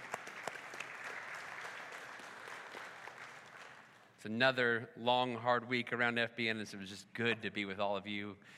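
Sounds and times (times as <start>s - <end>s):
audience applauding to thank the praise team: 0.0s - 4.1s
speech: 4.2s - 8.5s.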